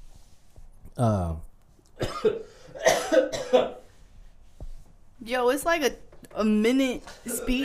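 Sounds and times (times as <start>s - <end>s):
speech: 1.0s - 1.5s, 5.2s - 7.6s
person coughing harshly: 2.0s - 3.8s, 7.1s - 7.6s.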